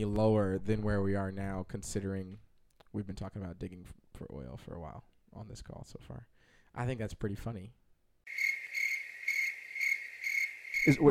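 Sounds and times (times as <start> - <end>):
speech: 0.0 - 8.4, 10.8 - 11.0
cricket chirping sound effect: 8.3 - 11.0.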